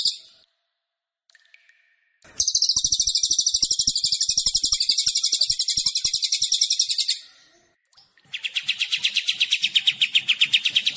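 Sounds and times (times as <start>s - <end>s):
kapas tembak and cililin songbirds singing: 2.4s - 7.2s, 8.2s - 10.9s.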